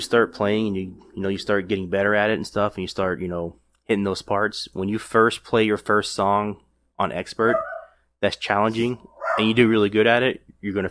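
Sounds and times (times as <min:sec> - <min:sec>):
speech: 0:00.0 - 0:10.8
dog barking in short sharp yaps: 0:07.5 - 0:08.0, 0:09.1 - 0:09.6.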